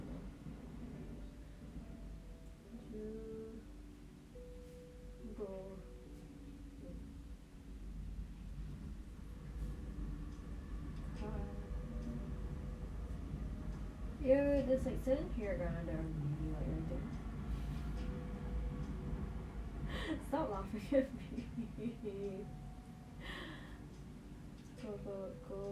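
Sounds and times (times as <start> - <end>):
low rumble of a running train: 0.0 - 25.7
speech: 14.3 - 17.1, 20.3 - 22.6, 24.8 - 25.7.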